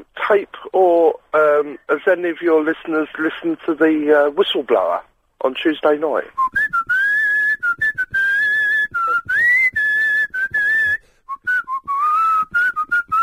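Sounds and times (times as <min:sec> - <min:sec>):
speech: 0:00.3 - 0:06.6
person whistling a tune: 0:06.4 - 0:13.2.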